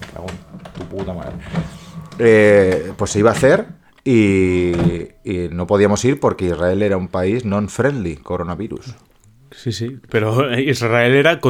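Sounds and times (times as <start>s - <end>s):
printer whirring and clattering: 0.0s - 7.2s
speech: 0.2s - 11.4s.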